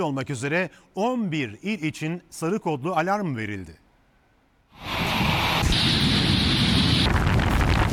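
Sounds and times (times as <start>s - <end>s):
speech: 0.0s - 3.8s
strong stormy wind gusts during a gale: 4.8s - 7.9s.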